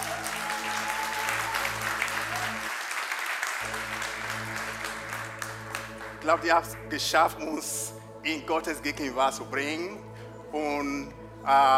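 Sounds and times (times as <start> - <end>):
crowd applause for a worship team: 0.0 - 6.5
speech: 6.3 - 11.7.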